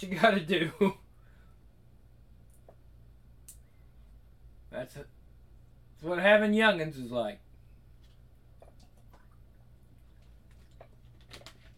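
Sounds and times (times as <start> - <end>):
speech: 0.0 - 1.0, 4.8 - 5.2, 6.0 - 7.4
steady low hum: 0.0 - 11.7
person drinking unchilled water: 8.6 - 10.9.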